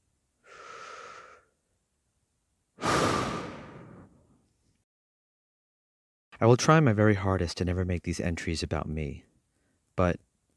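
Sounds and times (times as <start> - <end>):
slow deep breath in and out: 0.4 - 1.6, 2.8 - 4.3
speech: 6.4 - 9.3, 10.0 - 10.3.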